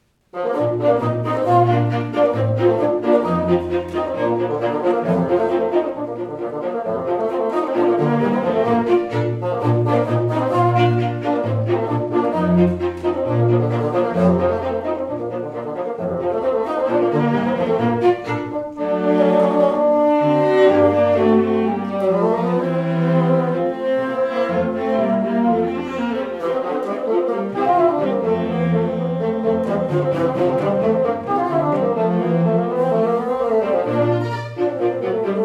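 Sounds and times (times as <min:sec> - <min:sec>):
bassoon quartet: 0:00.2 - 0:35.4.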